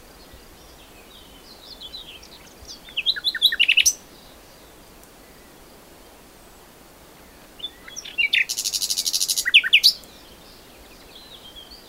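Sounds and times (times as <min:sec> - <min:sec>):
Common nightingale Luscinia megarhynchos song: 0:00.0 - 0:11.8.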